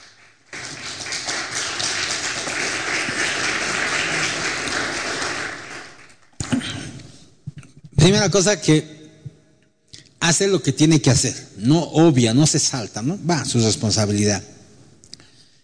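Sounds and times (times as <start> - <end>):
audience applauding with dense sustained clapping: 0.0 - 6.5
speech: 8.0 - 9.0, 10.3 - 14.6.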